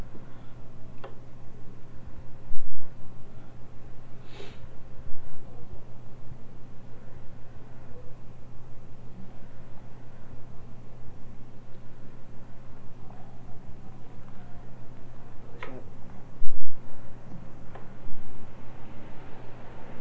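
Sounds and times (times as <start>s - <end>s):
steady low electrical hum: 0.0s - 19.9s
short sharp sniffle of a runny nose: 4.2s - 4.7s.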